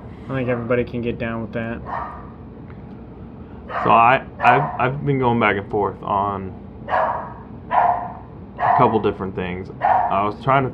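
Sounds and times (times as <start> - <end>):
speech: 0.3 - 2.3, 3.7 - 7.2, 8.8 - 10.7
dogs barking in short forceful bursts: 1.8 - 2.4, 3.6 - 5.0, 6.8 - 10.3.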